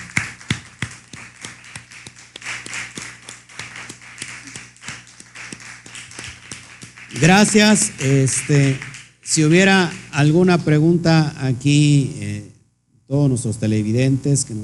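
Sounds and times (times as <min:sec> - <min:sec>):
small group clapping hands: 0:00.0 - 0:10.2
speech: 0:07.1 - 0:12.5, 0:13.1 - 0:14.6.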